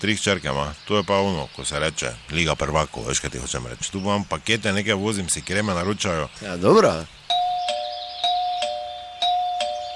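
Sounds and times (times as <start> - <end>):
speech: 0.0 - 7.2
doorbell rung by a parcel delivery man: 7.3 - 9.9.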